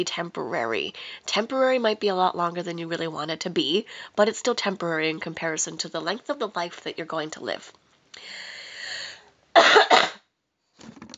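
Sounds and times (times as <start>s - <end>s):
speech: 0.0s - 8.5s
drawn-out raspy breath or throat sound: 8.2s - 9.3s
person coughing: 9.6s - 10.2s.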